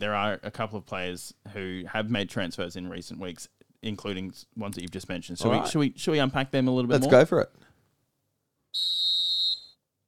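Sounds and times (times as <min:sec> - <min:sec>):
speech: 0:00.0 - 0:07.6, 0:08.7 - 0:09.1
referee's whistle blast: 0:08.8 - 0:09.8.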